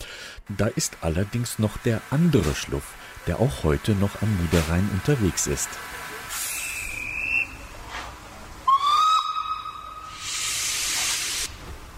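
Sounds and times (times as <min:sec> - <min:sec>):
broad steam hiss of a steam locomotive: 0:00.0 - 0:11.9
speech: 0:00.5 - 0:06.1
steam locomotive whistle at Krefeld Nordbahnhof station in Germany: 0:06.3 - 0:07.7, 0:08.6 - 0:11.5.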